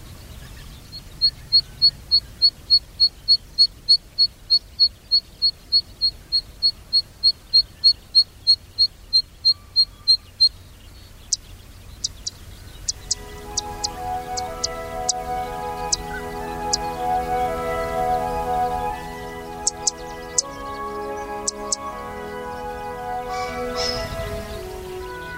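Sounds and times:
zitting cisticola singing in Nagareyama Chiba Prefecture Japan: 11.0 - 25.3
gentle music: 12.9 - 25.3.

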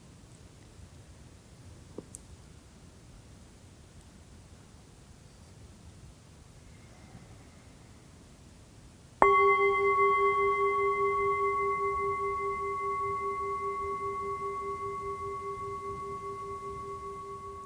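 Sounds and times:
singing bowl struck and ringing: 9.2 - 17.6.

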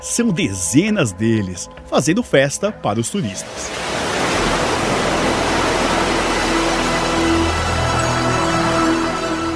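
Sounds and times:
speech: 0.1 - 4.0
rough sea waves of the Mar de Fora facing Africa: 3.2 - 9.5.

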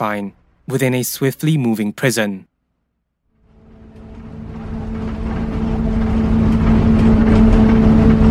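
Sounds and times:
speech: 0.0 - 2.5
bus engine humming: 3.4 - 8.2.

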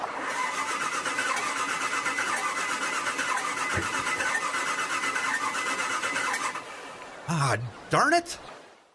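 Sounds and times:
boat motor on a lake cranking without starting: 0.1 - 6.7
speech: 7.4 - 8.5.

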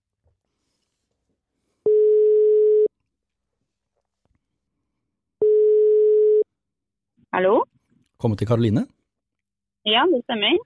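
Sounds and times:
telephone ringback tone as a phone call is placed: 1.9 - 2.9, 5.4 - 6.5
speech: 7.4 - 7.6, 8.2 - 9.0, 9.8 - 10.6.

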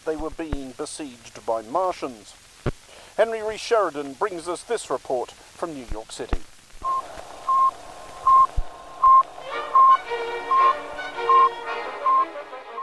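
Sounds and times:
radio noise and hiss: 0.0 - 12.8
speech: 0.1 - 2.5, 3.2 - 6.5
Sputnik satellite radio signal short beeps: 6.8 - 12.8.

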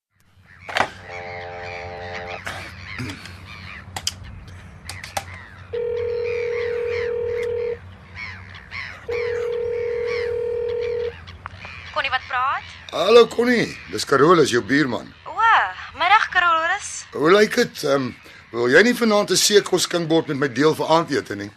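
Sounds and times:
bird calls chattering: 0.1 - 21.5
telephone tones from a call placed from an apartment: 1.0 - 2.4, 5.7 - 7.8, 9.1 - 11.1
speech: 12.9 - 15.2, 17.2 - 21.5.

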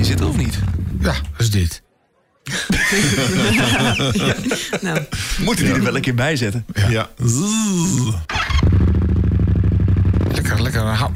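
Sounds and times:
speech: 0.1 - 1.8, 2.4 - 9.0, 10.4 - 11.1
laughter: 2.4 - 6.1
motorcycle engine revving and idling: 8.3 - 11.1.

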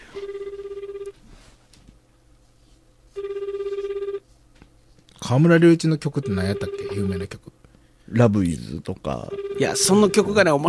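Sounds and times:
phone call ringback tone: 0.0 - 1.2, 3.2 - 4.2, 6.2 - 7.3, 9.3 - 10.4
faint hum: 0.0 - 10.6
speech: 5.3 - 7.5, 8.1 - 10.6.

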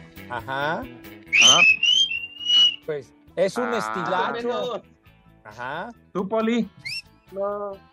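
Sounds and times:
speech: 0.3 - 1.9, 2.9 - 4.9, 5.5 - 7.9
loud whistle using fingers in mouth: 1.3 - 2.9, 6.8 - 7.1.

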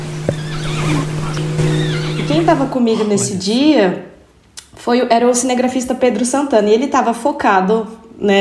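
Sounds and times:
steady low engine-like hum: 0.0 - 4.0
curl-crested jay mimicking a horse's neigh in a backyard: 0.3 - 3.3
speech: 2.5 - 4.1, 4.8 - 8.3.

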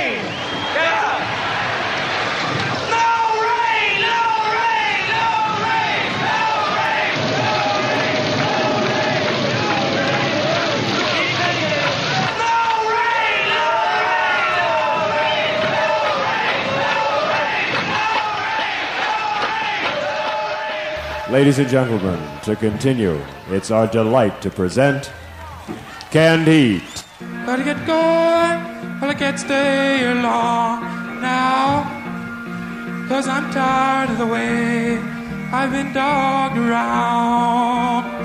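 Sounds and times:
huge outdoor festival crowd chanting for rain to stop: 0.2 - 22.4
speech: 21.3 - 26.9, 27.6 - 31.9, 33.1 - 38.1.

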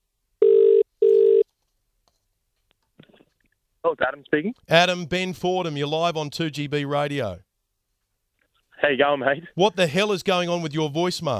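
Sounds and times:
ringing tones of an outgoing telephone call: 0.4 - 1.4
speech: 3.8 - 7.5, 8.8 - 11.3.

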